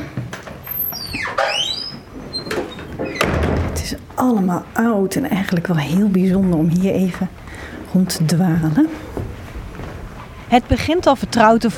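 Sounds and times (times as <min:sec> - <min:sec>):
door opening with a squealing creaking sweep: 0:00.0 - 0:04.2
hum: 0:00.0 - 0:11.7
speech: 0:03.9 - 0:09.0, 0:10.5 - 0:11.7.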